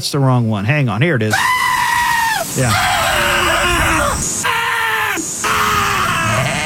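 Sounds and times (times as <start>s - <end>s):
speech: 0.0s - 1.7s, 2.6s - 3.0s
sheep screaming: 1.3s - 6.6s.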